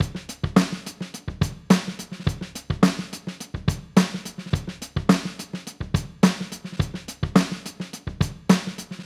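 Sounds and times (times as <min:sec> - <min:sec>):
wet live drum break: 0:00.0 - 0:09.0.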